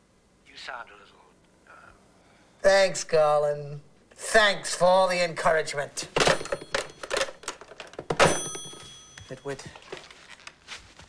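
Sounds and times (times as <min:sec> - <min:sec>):
speech: 0:00.7 - 0:02.0, 0:02.6 - 0:06.2, 0:09.3 - 0:09.9
typewriter clack with a sustained metallic ring: 0:04.4 - 0:10.4
typewriter key strikes: 0:06.0 - 0:10.0.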